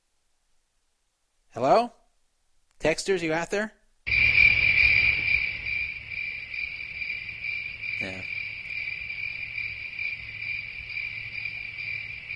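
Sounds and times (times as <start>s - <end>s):
speech: 1.6s - 2.0s, 2.8s - 4.2s
crickets chirping in a high continuous trill: 4.1s - 12.3s.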